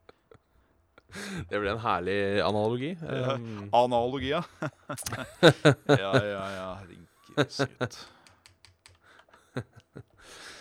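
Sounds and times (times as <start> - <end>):
speech: 1.1 - 8.2, 9.6 - 10.5
laughter: 2.3 - 8.2, 9.4 - 10.5
pen tapping against a webcam: 8.2 - 9.4.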